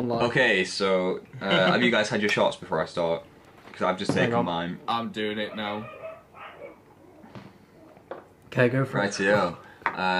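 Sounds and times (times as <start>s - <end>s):
speech: 0.0s - 6.0s, 8.5s - 10.1s
dog barking: 5.5s - 7.3s.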